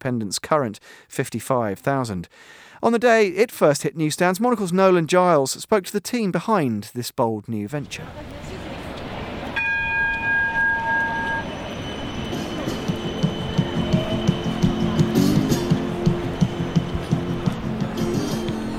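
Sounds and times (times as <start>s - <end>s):
speech: 0.0s - 8.4s
tram rumbling past on a busy street: 7.9s - 18.7s
high tonal whine: 9.4s - 18.7s.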